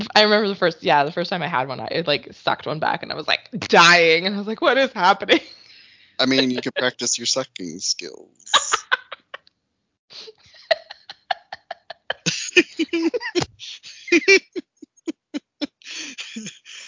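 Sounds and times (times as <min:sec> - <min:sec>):
speech: 0:00.2 - 0:05.6, 0:06.2 - 0:08.7
laughter and breathy giggling: 0:06.2 - 0:07.6, 0:08.5 - 0:09.4, 0:10.2 - 0:16.8
coughing fit: 0:06.2 - 0:09.0, 0:12.2 - 0:16.8.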